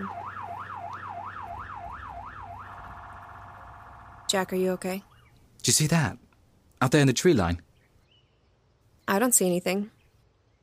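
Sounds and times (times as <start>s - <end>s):
arriving ambulance siren wailing: 0.0s - 5.3s
speech: 4.3s - 6.2s, 6.8s - 7.6s, 9.1s - 10.0s.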